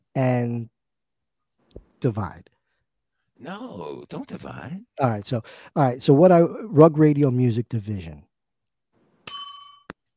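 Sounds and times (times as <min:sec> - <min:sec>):
speech: 0:00.2 - 0:00.8, 0:02.0 - 0:02.6, 0:03.4 - 0:08.3
single bright bell ding with shimmering metallic decay: 0:09.3 - 0:09.9.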